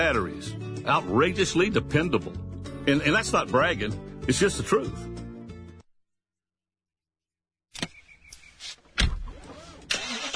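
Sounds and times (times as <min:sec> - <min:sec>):
speech: 0:00.0 - 0:05.2
car engine cranking and catching: 0:09.0 - 0:10.3.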